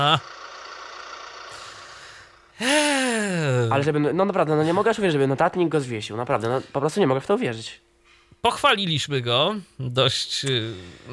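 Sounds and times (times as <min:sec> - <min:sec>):
laughter: 0:00.0 - 0:00.2
speech: 0:00.0 - 0:00.4, 0:02.6 - 0:11.1
truck engine idling: 0:00.0 - 0:05.1.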